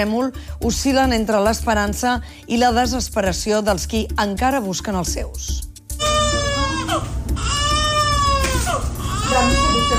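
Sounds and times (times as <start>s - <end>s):
speech: 0.0s - 5.7s
rescued baby crying after earthquake: 5.9s - 9.9s.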